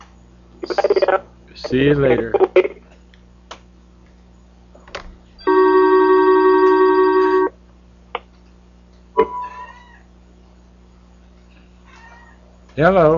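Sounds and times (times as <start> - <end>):
speech: 1.6 - 2.6, 12.8 - 13.1
telephone ringing as a conference call dials back in: 5.4 - 7.5.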